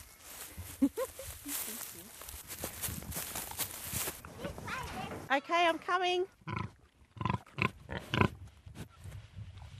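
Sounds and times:
pigs snuffling on a farm: 0.0s - 5.2s, 6.5s - 9.7s
speech: 5.3s - 6.4s.

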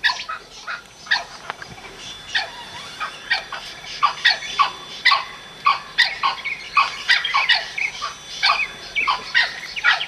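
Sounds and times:
Blue-winged kookaburra giving loud harsh cackling bursts: 2.3s - 10.0s.

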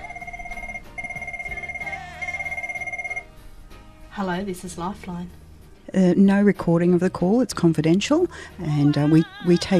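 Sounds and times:
telephone warbling electronic trill: 0.0s - 3.3s
speech: 4.2s - 9.7s.

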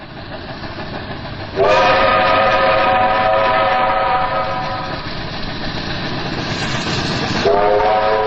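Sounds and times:
rumbling rail noise of a 62 class Garratt steam locomotive: 0.0s - 8.2s
62 class Garratt steam locomotive whistle: 1.6s - 5.1s, 7.3s - 8.2s.

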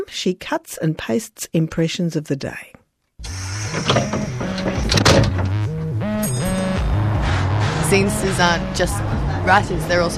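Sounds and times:
speech: 0.1s - 5.3s, 7.9s - 10.1s
double-decker London bus engine droning and whining while shifting gears: 3.2s - 10.1s
bus rattles and clunks: 3.3s - 5.9s.

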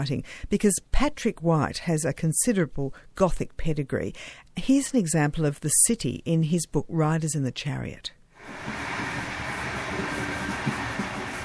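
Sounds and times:
speech: 0.0s - 9.2s
train rolling steadily along the rails: 8.4s - 11.4s.

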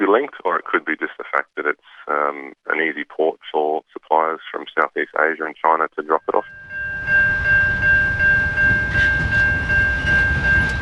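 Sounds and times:
speech: 0.0s - 7.3s
high sustained tone: 6.3s - 10.8s
freight train headed to the Bunbury port in Western Australia rumbling past: 6.5s - 10.8s.

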